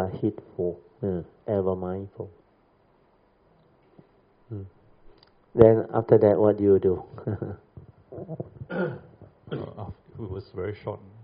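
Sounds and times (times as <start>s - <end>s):
speech: 0.1s - 2.4s, 4.5s - 4.8s, 5.6s - 7.6s, 8.2s - 11.2s
low murmured vocal sounds: 4.5s - 4.8s, 7.1s - 11.2s
person coughing: 8.2s - 10.0s.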